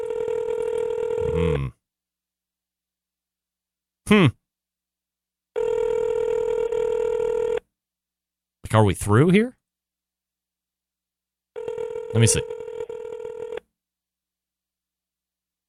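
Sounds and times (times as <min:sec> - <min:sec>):
phone ringback tone over a speaker: 0:00.0 - 0:01.6, 0:05.6 - 0:07.6, 0:11.6 - 0:13.6
speech: 0:01.4 - 0:01.8, 0:04.1 - 0:04.4, 0:08.7 - 0:09.6, 0:12.1 - 0:12.6.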